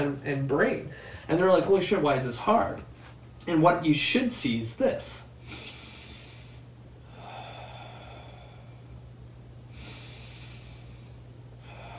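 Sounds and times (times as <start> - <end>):
speech: 0.0 - 5.7
low constant hum: 0.0 - 11.9
slow deep breaths drawn in during a diaphragm breathing demonstration: 0.9 - 1.3, 5.4 - 9.0, 9.7 - 11.9.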